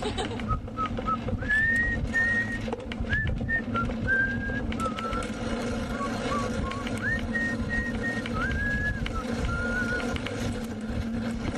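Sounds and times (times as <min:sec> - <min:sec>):
laughter: 0:00.0 - 0:00.6
steady low rumble: 0:00.0 - 0:11.5
person whistling a short tune: 0:00.8 - 0:05.3, 0:06.0 - 0:10.1.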